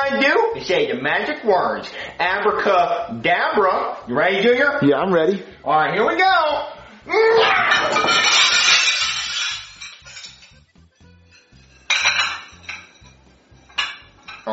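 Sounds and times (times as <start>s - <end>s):
speech: 0.1s - 8.4s
dishes and pots clattering and shattering as a tablecloth is yanked off a table: 7.4s - 10.6s, 11.2s - 14.5s
smaller burst of clinking crockery: 7.6s - 14.5s.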